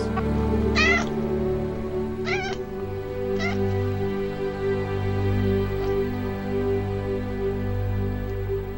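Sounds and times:
steady low drone: 0.0s - 8.7s
cat meowing: 0.7s - 1.2s, 2.2s - 2.7s, 3.3s - 3.8s.

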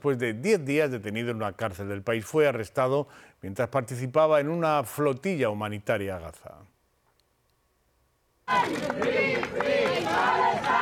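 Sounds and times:
speech: 0.0s - 6.7s, 8.5s - 10.8s
large crowd chanting in unison: 8.5s - 10.8s.

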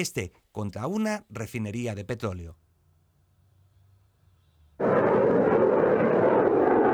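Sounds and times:
speech: 0.0s - 2.6s
low rumble: 4.8s - 6.9s
missile test launch roaring blast: 4.8s - 6.9s.

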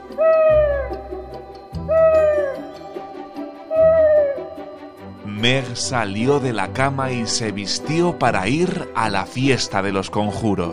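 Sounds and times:
owl hooting: 0.0s - 5.0s
speech: 0.1s - 0.4s, 5.4s - 10.7s.

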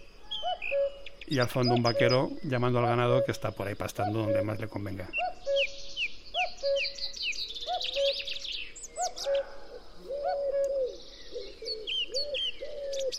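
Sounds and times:
common wood pigeon cooing in ash groves in the Lozoya Valley, Madrid, Spain: 0.0s - 5.7s, 6.4s - 8.4s, 9.0s - 13.1s
small birds chirping and trilling in ash groves in the Lozoya Valley, Madrid, Spain: 0.0s - 13.1s
speech: 0.6s - 5.7s.

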